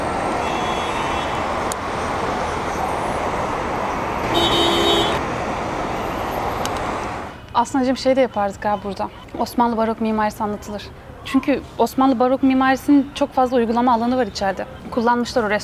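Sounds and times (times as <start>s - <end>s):
busy street traffic with passing cars and engines: 0.0s - 15.6s
car horn toot: 0.4s - 1.4s, 4.3s - 5.2s
speech: 7.6s - 15.6s.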